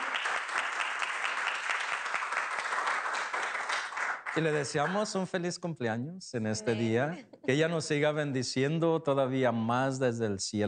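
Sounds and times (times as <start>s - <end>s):
audience applauding: 0.0s - 5.0s
speech: 4.4s - 10.6s.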